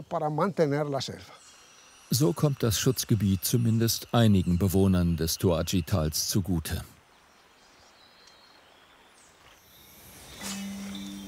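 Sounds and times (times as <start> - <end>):
speech: 0.0 - 1.5, 2.1 - 7.0
frogs calling at night in the rainforest of the Reserva Otonga reserve: 0.0 - 11.2
nocturnal insects hissing in the rainforest: 0.0 - 11.2.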